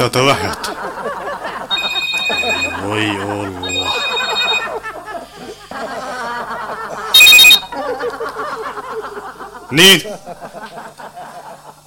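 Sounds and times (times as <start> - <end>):
speech: 0.0 - 1.2, 2.9 - 4.0, 9.7 - 10.7
laughter: 0.1 - 11.8
mobile phone ringing: 1.7 - 3.0, 3.6 - 4.8, 7.2 - 7.7.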